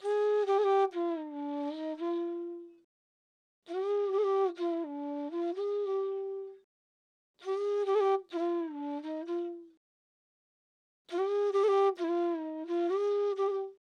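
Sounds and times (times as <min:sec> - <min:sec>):
trap flute melody in F minor at 130 BPM: 0:00.0 - 0:02.8, 0:03.7 - 0:06.6, 0:07.4 - 0:09.8, 0:11.1 - 0:13.8.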